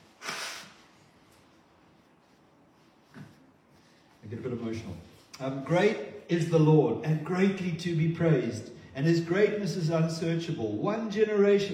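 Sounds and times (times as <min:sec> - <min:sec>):
nose blowing: 0:00.0 - 0:00.9
person sniffing: 0:00.0 - 0:01.0
speech: 0:04.3 - 0:11.7.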